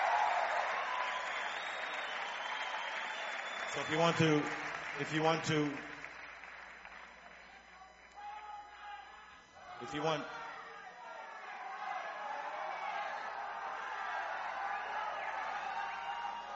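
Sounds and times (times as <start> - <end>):
large concert crowd applauding and yelling for more: 0.0 - 16.5
speech: 3.7 - 5.9, 9.8 - 10.4.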